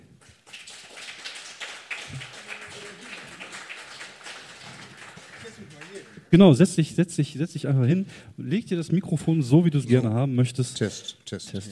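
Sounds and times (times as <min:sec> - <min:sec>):
crowd applauding to welcome a guest: 0:00.2 - 0:06.3
speech: 0:05.5 - 0:11.7.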